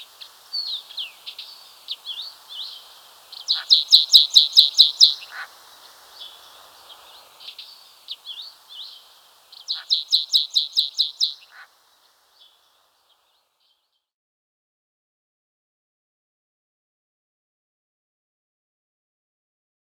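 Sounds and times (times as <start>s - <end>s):
White-capped bunting singing: 0.0s - 11.7s.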